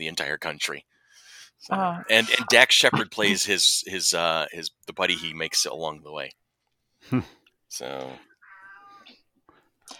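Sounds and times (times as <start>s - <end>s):
speech: 0.0s - 1.0s, 1.6s - 6.4s, 7.0s - 8.3s
cat meowing: 8.4s - 9.2s.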